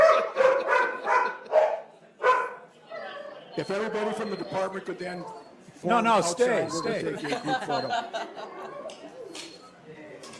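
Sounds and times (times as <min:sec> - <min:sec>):
dogs barking sharp tonal yaps at an oath ceremony: 0:00.0 - 0:03.2
speech: 0:03.6 - 0:08.6
laughter: 0:06.8 - 0:09.3.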